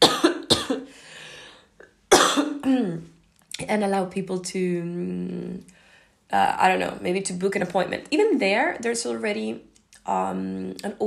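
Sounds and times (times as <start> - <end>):
person coughing: 0.0 - 0.9, 2.1 - 3.0
speech: 2.7 - 11.0.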